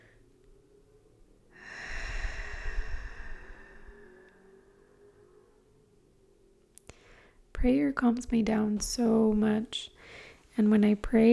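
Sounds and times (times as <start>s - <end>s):
big deep breath in: 1.6s - 5.2s, 10.0s - 10.4s
speech: 7.6s - 11.3s.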